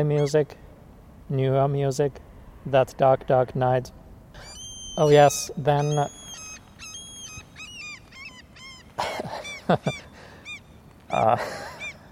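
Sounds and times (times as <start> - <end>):
seagull calling: 0.0 - 0.5, 4.4 - 12.1
speech: 0.0 - 0.6, 1.3 - 6.2, 9.7 - 10.1, 11.1 - 11.7.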